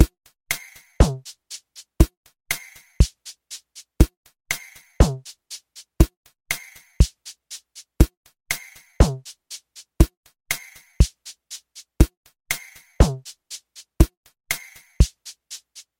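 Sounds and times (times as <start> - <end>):
inverted quad background rhythm track: 0.0 - 15.9.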